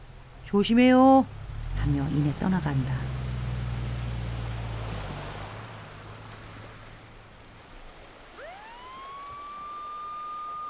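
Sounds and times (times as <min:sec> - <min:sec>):
low rumbling wind or surf noise: 0:00.0 - 0:10.6
speech: 0:00.5 - 0:03.2
police car siren wailing: 0:08.3 - 0:10.6.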